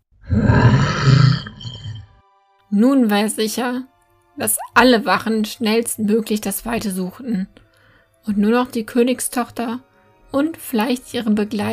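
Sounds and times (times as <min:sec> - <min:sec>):
deep rumbling monstrous dragon roar: 0:00.2 - 0:02.1
speech: 0:00.3 - 0:01.2, 0:02.7 - 0:07.6, 0:08.2 - 0:11.7.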